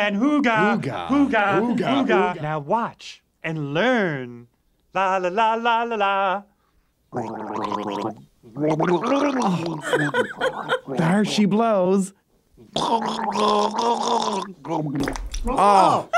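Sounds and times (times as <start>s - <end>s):
speech: 0.0s - 6.5s, 7.1s - 16.1s
laughter: 0.6s - 2.5s, 9.5s - 11.3s, 15.5s - 16.1s
person gargling liquid in their throat: 7.2s - 11.1s, 12.6s - 16.1s.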